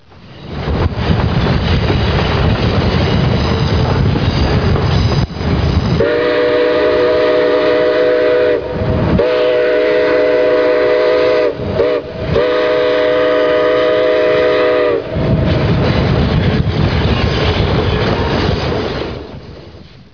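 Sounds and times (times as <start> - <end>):
steam: 0.0 - 20.1.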